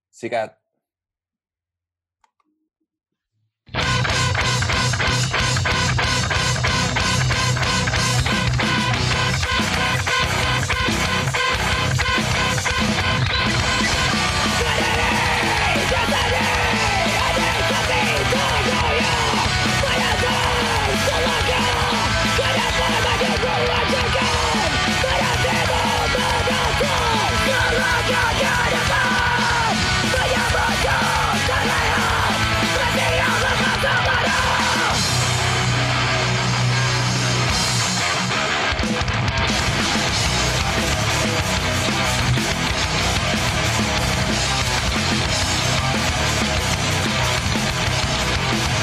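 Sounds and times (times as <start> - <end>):
speech: 0.2 - 0.6
loud heavy hard rock song with distorted instruments: 3.7 - 48.8
strained shouting rock vocals: 13.6 - 35.1.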